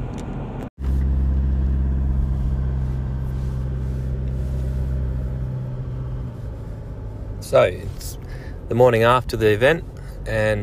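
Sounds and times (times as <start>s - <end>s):
in-car road noise from a car driving along the road: 0.0s - 10.6s
speech: 7.5s - 10.6s.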